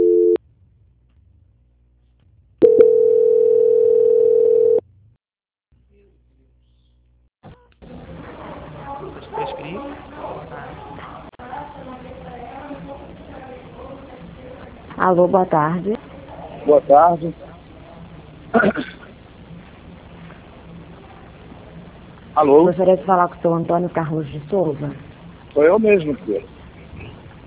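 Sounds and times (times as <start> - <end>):
telephone tones during a call transfer: 0.0 - 0.4, 2.6 - 4.8
speech: 15.1 - 16.1, 16.7 - 17.4, 18.6 - 18.9, 22.4 - 26.6.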